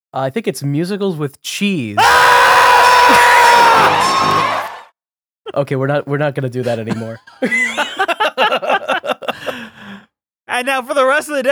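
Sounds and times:
speech: 0:00.1 - 0:04.6, 0:05.5 - 0:08.6, 0:10.5 - 0:11.5
group of people screaming together: 0:02.0 - 0:04.9
laughter: 0:03.0 - 0:04.7, 0:06.6 - 0:10.0.

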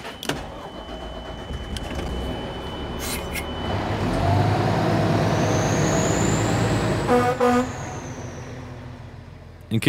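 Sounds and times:
fire truck siren: 0:00.0 - 0:08.7
fire truck engine drone: 0:00.0 - 0:09.8
fire truck horn blasts: 0:06.9 - 0:08.4.

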